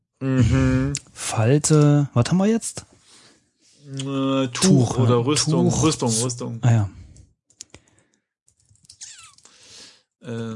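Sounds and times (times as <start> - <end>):
speech: 0.2 - 2.9, 3.9 - 7.0
typing on a computer keyboard: 7.6 - 9.4.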